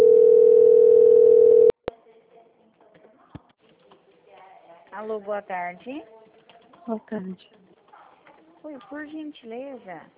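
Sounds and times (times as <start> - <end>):
telephone call transfer tone: 0.0 - 1.8
speech: 5.0 - 6.2, 6.9 - 7.6, 8.6 - 10.1.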